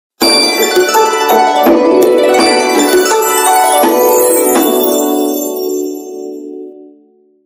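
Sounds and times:
Samsung SCH-W689 Wave phone ringtone with gliss tune: 0.2s - 6.4s.

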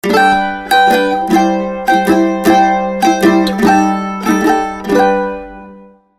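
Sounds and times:
mandolin ringtone on a mobile phone: 0.0s - 6.1s.

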